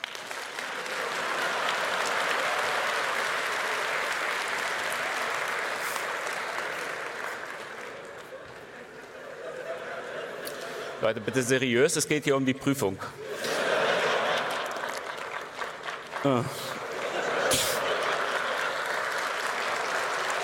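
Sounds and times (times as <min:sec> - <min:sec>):
audience clapping to vote: 0:00.0 - 0:11.7, 0:13.4 - 0:20.4
laughter: 0:06.7 - 0:11.7, 0:13.1 - 0:20.4
speech: 0:11.0 - 0:13.2, 0:16.2 - 0:16.7.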